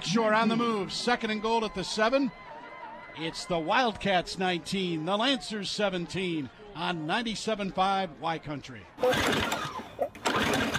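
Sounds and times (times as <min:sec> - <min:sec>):
speech: 0:00.1 - 0:02.5, 0:03.2 - 0:09.6
lawn mower engine sputtering and chugging: 0:09.0 - 0:10.7.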